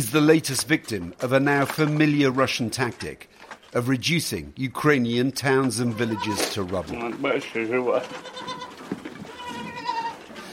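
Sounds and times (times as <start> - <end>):
speech: 0.0 - 8.7
goats bleating in a shelled town in Ukraine: 5.8 - 6.6, 7.6 - 10.5.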